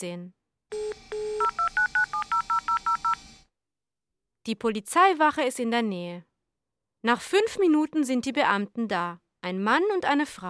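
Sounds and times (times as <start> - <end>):
speech: 0.0 - 0.4, 4.4 - 6.3, 7.0 - 10.4
mobile phone keypad tones dialing an emergency number: 0.7 - 3.2.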